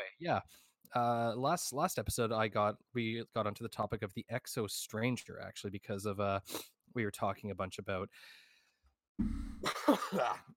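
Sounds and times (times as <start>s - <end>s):
speech: 0.2s - 8.5s, 9.2s - 10.5s
wet throat clearing: 9.2s - 10.5s.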